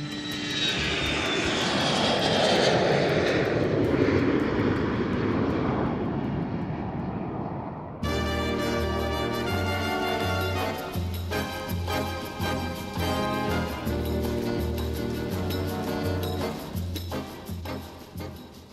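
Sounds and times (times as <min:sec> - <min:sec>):
airplane engine roaring during takeoff: 0:00.0 - 0:18.7
music: 0:08.0 - 0:18.7.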